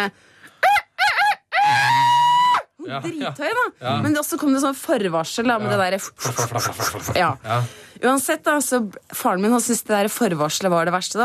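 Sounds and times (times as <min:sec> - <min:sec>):
speech: 0:00.0 - 0:00.4, 0:02.9 - 0:11.2
person imitating a rooster crow: 0:00.6 - 0:02.7.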